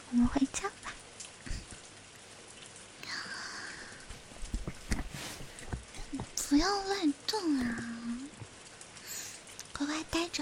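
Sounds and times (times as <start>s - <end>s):
heavy rain falling: 0.0s - 10.4s
speech: 0.1s - 0.9s, 6.5s - 8.0s.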